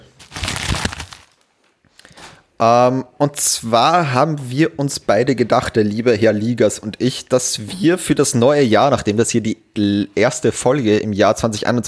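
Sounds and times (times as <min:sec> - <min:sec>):
crinkly paper rustling: 0:00.0 - 0:01.7
speech: 0:02.6 - 0:11.8.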